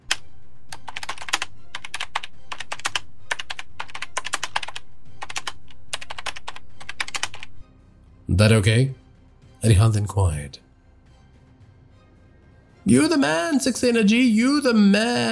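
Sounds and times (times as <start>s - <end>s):
typing code on a computer keyboard attached to a server stack: 0.0s - 7.5s
speech: 8.3s - 9.0s, 9.6s - 10.6s, 12.8s - 15.3s.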